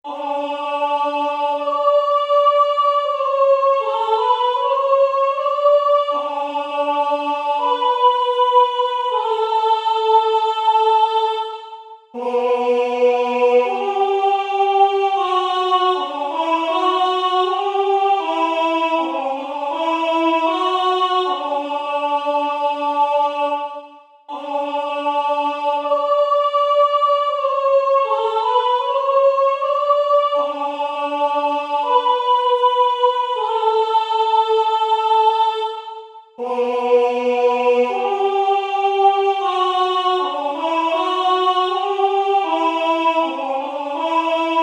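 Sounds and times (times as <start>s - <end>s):
high voice singing: 0.0s - 44.6s.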